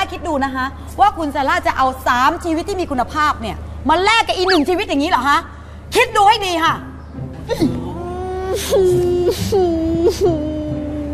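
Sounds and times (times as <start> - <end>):
speech: 0.1 - 6.9, 7.5 - 7.9, 8.5 - 10.6
person crying and sobbing: 7.4 - 11.1.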